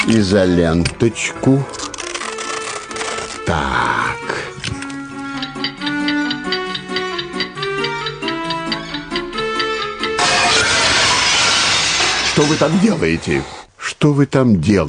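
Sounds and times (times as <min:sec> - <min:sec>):
speech: 0:00.1 - 0:01.9, 0:03.5 - 0:04.5, 0:12.4 - 0:14.8
steady tinkling tonal notes: 0:05.4 - 0:10.2
dropped pane of glass shattering: 0:10.2 - 0:13.1.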